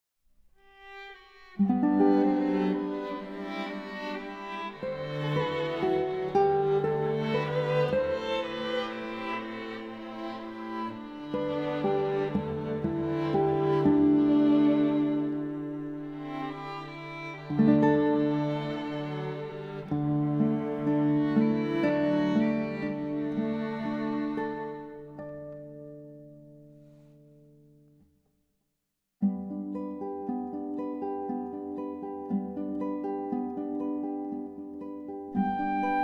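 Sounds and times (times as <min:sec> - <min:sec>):
string quartet: 0:00.7 - 0:25.3, 0:35.4 - 0:36.0
guitar: 0:00.8 - 0:28.0, 0:29.2 - 0:36.0
flute: 0:35.4 - 0:36.0.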